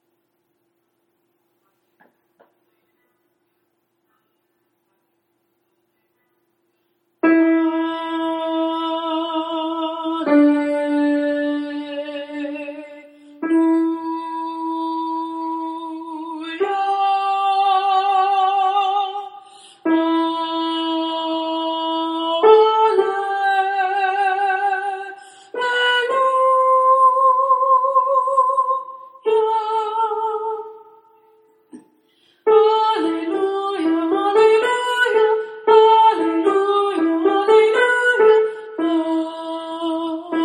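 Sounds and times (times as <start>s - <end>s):
soprano singing an alleluia in six-four time: 7.2s - 31.5s, 32.4s - 40.4s.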